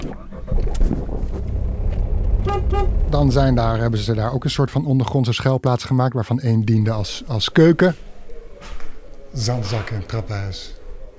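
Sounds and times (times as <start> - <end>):
road noise from a small Mini car: 0.0 - 4.7, 6.7 - 11.1
small Mini car engine droning with a steady low rumble: 1.0 - 4.2
speech: 3.1 - 10.8.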